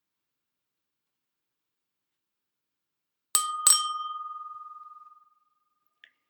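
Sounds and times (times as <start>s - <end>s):
bicycle bell ringing: 3.4s - 5.1s.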